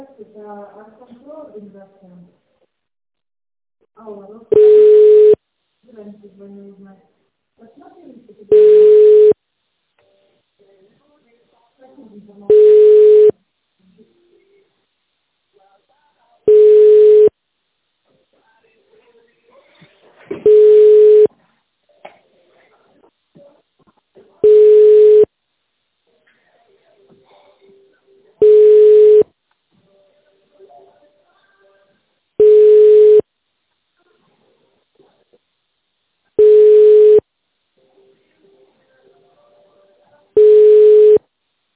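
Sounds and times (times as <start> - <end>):
speech: 0.4 - 2.4, 3.9 - 9.3, 10.6 - 13.3
telephone ringback tone on a company line: 4.6 - 5.4, 12.5 - 13.3, 16.5 - 17.3, 20.5 - 21.3, 24.4 - 25.3, 28.4 - 29.2, 32.4 - 33.2, 36.4 - 37.2, 40.4 - 41.2.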